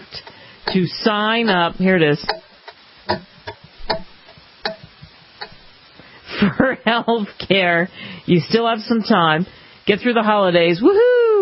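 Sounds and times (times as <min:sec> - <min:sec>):
speech: 0:00.1 - 0:02.4, 0:06.7 - 0:11.1
atomic clock ticking: 0:00.2 - 0:05.8.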